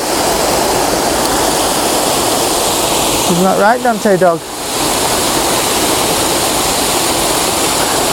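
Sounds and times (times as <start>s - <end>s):
waterfall rushing: 0.0s - 8.1s
speech: 3.3s - 4.5s.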